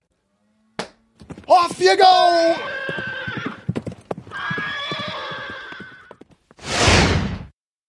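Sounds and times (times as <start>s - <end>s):
horse hooves clip-clopping: 0.8s - 6.6s
speech: 1.5s - 2.8s
horse neighing: 1.5s - 6.2s.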